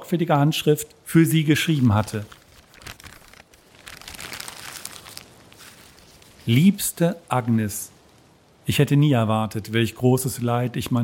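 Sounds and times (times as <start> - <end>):
speech: 0.1 - 2.4, 6.4 - 8.0, 8.7 - 11.0
envelope being opened: 1.6 - 6.5
letter paper crinkling as it is unfolded: 1.6 - 6.7.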